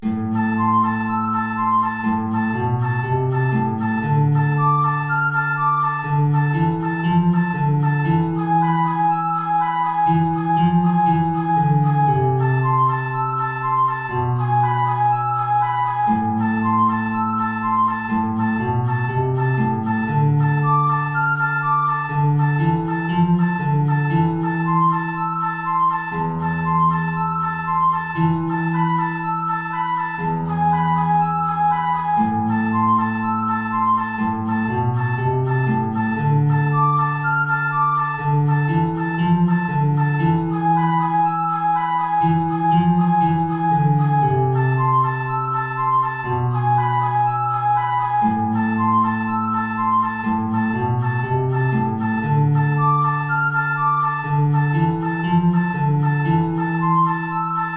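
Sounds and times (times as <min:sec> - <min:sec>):
transverse flute playing an allegro in a high register: 0:00.3 - 0:57.7.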